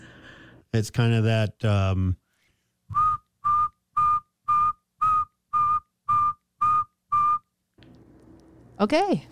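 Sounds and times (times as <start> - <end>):
speech: 0.7 - 2.2, 8.8 - 9.2
person whistling imitation of saw-whet owl call: 2.9 - 7.5.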